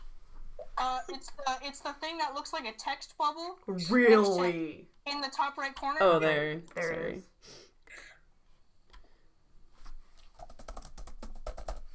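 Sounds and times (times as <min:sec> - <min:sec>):
speech: 0:00.8 - 0:07.6
faint typing on a computer keyboard: 0:10.2 - 0:11.9.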